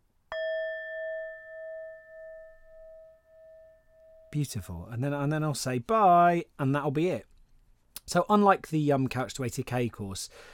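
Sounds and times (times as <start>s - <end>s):
small gong struck softly and ringing: 0.3s - 4.4s
speech: 4.3s - 7.3s, 8.1s - 10.5s.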